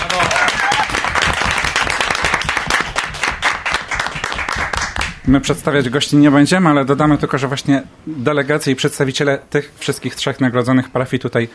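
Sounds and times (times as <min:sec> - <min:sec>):
studio audience applause: 0:00.0 - 0:05.2
speech: 0:05.3 - 0:11.5.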